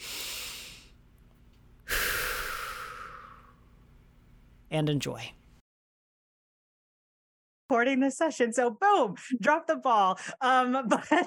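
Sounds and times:
person taking a deep breath: 0.0 - 1.0, 1.8 - 3.7
speech: 4.7 - 5.4, 7.7 - 11.2.

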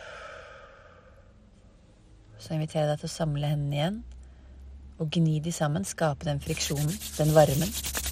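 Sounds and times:
soft drawn-out exhale of breath: 0.0 - 1.4
speech: 2.4 - 4.2, 5.0 - 8.0.

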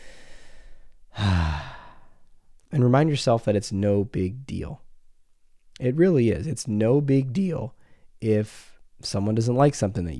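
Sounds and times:
person taking a deep breath: 0.0 - 2.3
speech: 2.8 - 4.9, 5.8 - 10.1.

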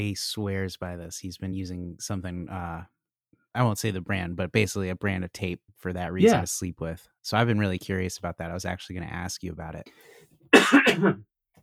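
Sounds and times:
speech: 0.0 - 3.0, 3.6 - 11.3
single raspy cough: 10.5 - 11.2.

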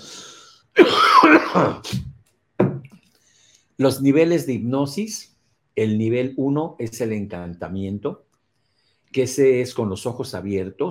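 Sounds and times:
person clearing throat: 0.8 - 2.9
person coughing: 0.8 - 2.9
speech: 1.6 - 2.1, 3.8 - 8.3, 9.1 - 10.8.

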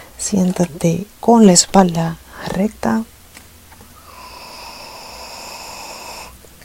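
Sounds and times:
speech: 0.2 - 3.1
long deep breath close to the microphone: 4.0 - 6.4.

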